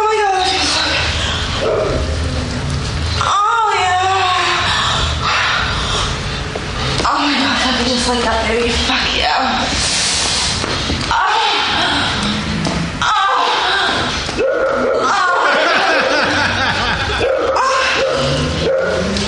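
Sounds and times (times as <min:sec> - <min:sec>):
dense noisy background: 0:00.0 - 0:19.2
laughter: 0:15.0 - 0:17.6
dog barking: 0:17.2 - 0:19.1.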